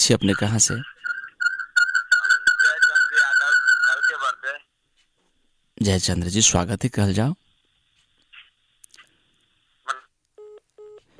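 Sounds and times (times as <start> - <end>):
speech: 0.0 - 1.0, 5.8 - 7.5
flat electronic telephone line beeps as a call drops: 0.0 - 4.4
thin steady telephone line whine with crackly bursts: 0.1 - 4.3.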